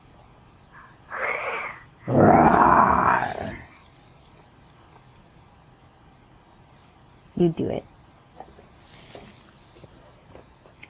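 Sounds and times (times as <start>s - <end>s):
person imitating a lion roar: 1.1s - 3.7s
speech: 2.1s - 3.6s, 7.4s - 7.9s.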